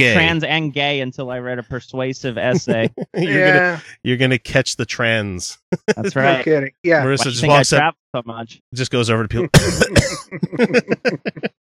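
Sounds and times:
laughter: 0:00.0 - 0:00.4, 0:02.4 - 0:04.2, 0:05.2 - 0:07.8, 0:09.4 - 0:11.5
speech: 0:00.0 - 0:11.5
person coughing with harsh open-mouthed bursts: 0:02.6 - 0:04.0, 0:09.5 - 0:11.5.

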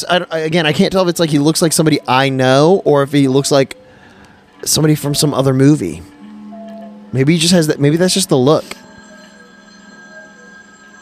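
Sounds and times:
speech: 0:00.0 - 0:03.8, 0:04.6 - 0:06.1, 0:07.1 - 0:08.8
telephone with bright electronic ringing tone: 0:06.3 - 0:11.0.

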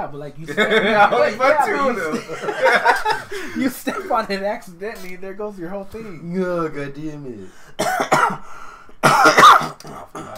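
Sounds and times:
speech: 0:00.0 - 0:10.3
laughter: 0:00.5 - 0:04.3
harsh coughing brought on by allergies: 0:03.3 - 0:04.2, 0:07.8 - 0:10.3.

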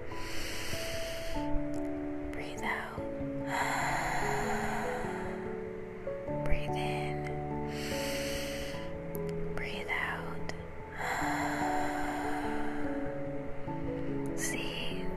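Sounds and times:
slow deep breathing in a relaxation exercise: 0:00.0 - 0:01.6, 0:03.4 - 0:05.7, 0:07.6 - 0:09.0, 0:10.9 - 0:14.4
soft steady music: 0:00.0 - 0:15.1.

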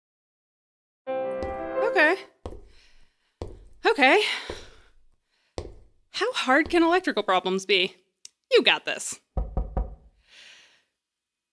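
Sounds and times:
speech: 0:01.9 - 0:02.3, 0:03.9 - 0:04.6, 0:06.2 - 0:09.2
knocking on a wooden door: 0:09.4 - 0:10.1.

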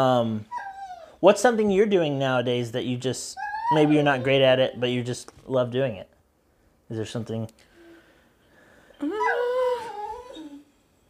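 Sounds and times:
speech: 0:00.0 - 0:00.6, 0:01.2 - 0:06.1, 0:06.9 - 0:07.7
dog whimpering: 0:00.0 - 0:01.2, 0:03.3 - 0:04.8, 0:09.0 - 0:10.8.

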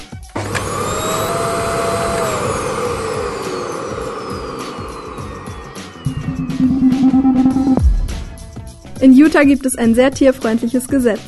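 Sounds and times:
vacuum cleaner running: 0:00.0 - 0:07.7
speech: 0:09.0 - 0:11.2.

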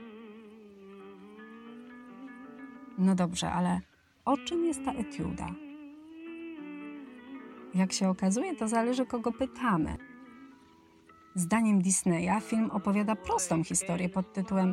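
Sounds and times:
speech: 0:03.0 - 0:05.6, 0:07.7 - 0:10.1, 0:11.4 - 0:14.7
song with female vocals: 0:03.7 - 0:10.1, 0:11.4 - 0:14.7.

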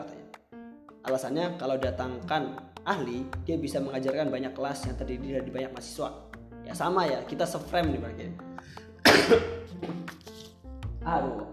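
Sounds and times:
speech: 0:01.1 - 0:10.0, 0:11.1 - 0:11.5
throat-clearing rasps and breathy catches: 0:09.0 - 0:09.7
single harsh loud cough: 0:09.0 - 0:10.4.

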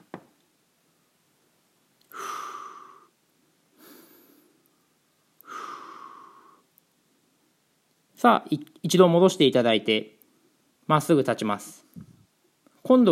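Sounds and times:
deep slow breathing during a standing hamstring stretch: 0:02.1 - 0:04.7, 0:05.4 - 0:06.7
speech: 0:08.2 - 0:10.2, 0:10.9 - 0:12.1, 0:12.9 - 0:13.1.

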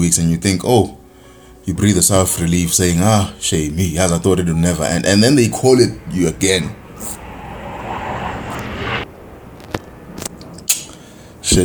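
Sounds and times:
speech: 0:00.0 - 0:01.0, 0:01.6 - 0:07.2
large airplane passing overhead: 0:03.8 - 0:11.4.

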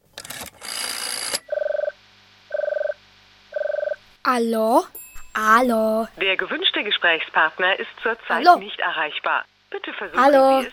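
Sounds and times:
warbling telephone rings on the line: 0:01.2 - 0:03.0, 0:03.6 - 0:04.0
speech: 0:04.3 - 0:10.7.

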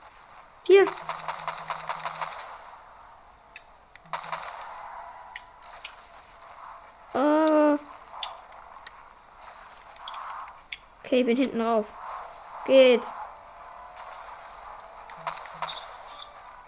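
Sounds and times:
faint video game sounds: 0:00.0 - 0:16.6
video game gunfire from the back of a pickup: 0:00.1 - 0:02.8, 0:04.0 - 0:08.4, 0:13.9 - 0:16.6
speech: 0:00.7 - 0:01.3, 0:11.1 - 0:12.0, 0:12.7 - 0:13.2.

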